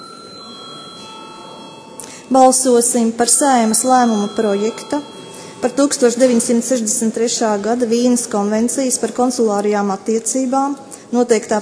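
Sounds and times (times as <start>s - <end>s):
electric chamber bell in the Latvian parliament ringing before a vote: 0.0s - 8.4s
speech: 2.3s - 11.6s.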